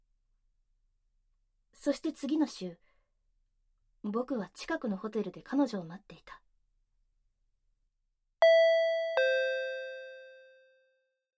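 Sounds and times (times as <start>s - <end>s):
speech: 1.8s - 2.9s, 4.0s - 6.4s
two-tone intercom doorbell chime: 8.4s - 11.0s.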